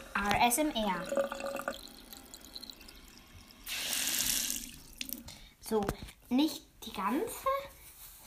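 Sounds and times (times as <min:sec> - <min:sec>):
tap water gushing into a sink onto a cloth: 0:00.0 - 0:05.3
speech: 0:00.2 - 0:01.9, 0:05.7 - 0:07.6.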